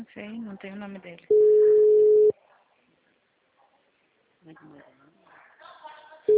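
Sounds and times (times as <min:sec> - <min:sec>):
speech: 0:00.0 - 0:01.9, 0:04.4 - 0:05.2
telephone ringback tone while placing a call: 0:01.3 - 0:02.3.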